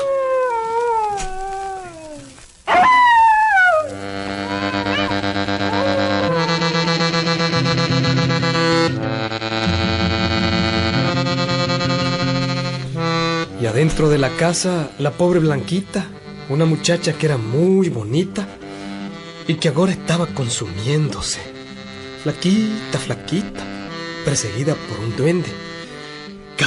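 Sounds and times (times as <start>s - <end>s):
dog howling at night on a street corner: 0.0s - 7.4s
layered instrumental chords: 3.8s - 26.6s
speech: 14.2s - 18.5s, 19.5s - 21.6s, 22.2s - 25.6s.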